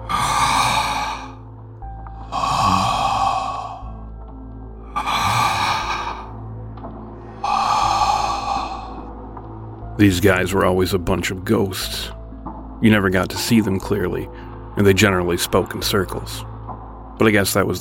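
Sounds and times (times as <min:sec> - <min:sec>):
heavy, hoarse, menacing breathing: 0:00.0 - 0:09.4
speech: 0:10.0 - 0:12.2, 0:12.8 - 0:16.5, 0:17.2 - 0:17.8.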